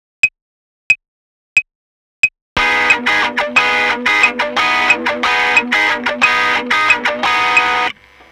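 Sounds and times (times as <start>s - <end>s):
offbeat rhythm: 2.6s - 7.9s.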